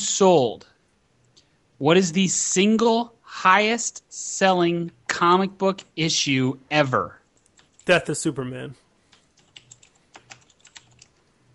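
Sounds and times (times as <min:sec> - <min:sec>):
speech: 0:00.2 - 0:00.7, 0:01.8 - 0:07.2, 0:07.9 - 0:08.8
typing on a computer keyboard: 0:07.4 - 0:07.9, 0:09.1 - 0:11.2.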